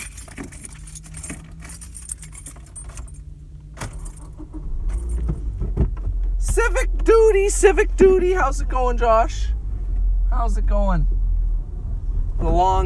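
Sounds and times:
keys jangling while someone searches for them: 0.0s - 5.3s
car engine rumbling low: 0.0s - 12.8s
speech: 6.6s - 9.6s, 10.4s - 11.2s, 12.4s - 12.8s.

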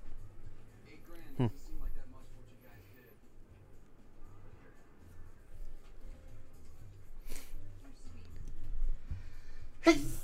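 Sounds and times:
faint room noise: 0.0s - 10.2s
person sneezing: 9.8s - 10.2s.

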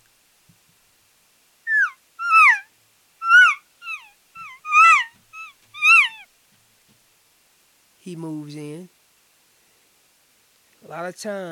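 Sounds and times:
cow elk mews blown on a call by an elk hunter: 1.7s - 6.2s
speech: 8.1s - 9.0s, 10.9s - 11.5s.

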